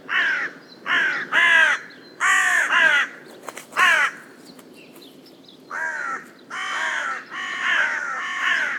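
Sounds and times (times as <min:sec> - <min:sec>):
carrion crow Corvus corone cawing: 0:00.1 - 0:03.2, 0:03.8 - 0:04.2, 0:05.7 - 0:08.7.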